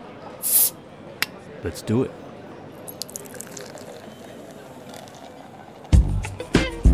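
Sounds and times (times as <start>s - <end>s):
bottle fizzing hiss of escaping gas: 0.4s - 0.8s, 2.9s - 6.8s
speech: 1.6s - 2.2s
bottle popping open: 2.9s - 6.3s.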